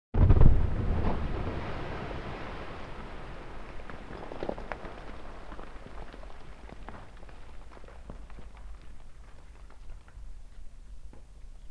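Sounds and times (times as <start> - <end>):
explosion: 0.2 - 7.6.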